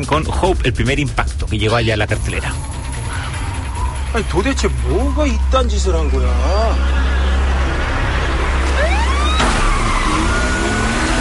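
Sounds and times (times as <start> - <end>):
speech: 0.0 - 2.8, 4.1 - 7.1
police siren wailing: 2.3 - 11.1
roar of speeding traffic: 2.7 - 11.1.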